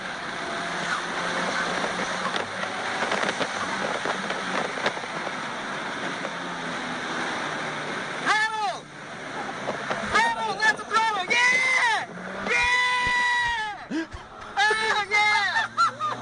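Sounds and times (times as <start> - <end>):
race car engine and road roar from inside the car: 0.0 - 16.1
people laughing and whooping: 11.8 - 16.1.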